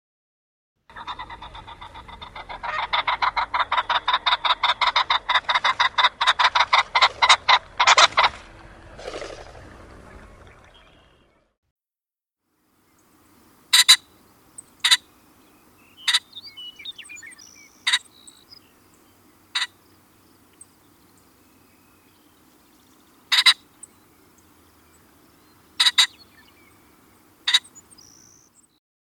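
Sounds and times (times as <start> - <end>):
ring-necked pheasant squawking calls: 0.9 - 8.4, 13.7 - 15.2, 15.8 - 22.3, 23.1 - 28.5.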